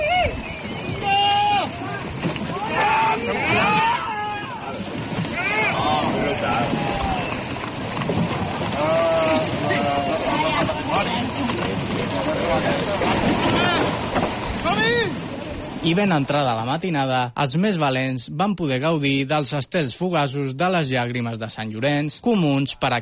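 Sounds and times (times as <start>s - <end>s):
crowd of people shouting and chattering loudly at a lifeboat show: 0.0s - 16.0s
sea noise at Calafell at night: 0.0s - 17.4s
steady wind at sea at night: 0.0s - 23.0s
speech: 15.9s - 23.0s.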